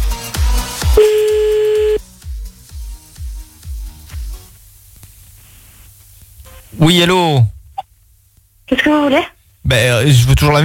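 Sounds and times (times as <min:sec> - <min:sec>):
telephone dialing beeps while a call is redialled: 0:01.0 - 0:02.0
speech: 0:06.8 - 0:07.5, 0:08.7 - 0:10.6.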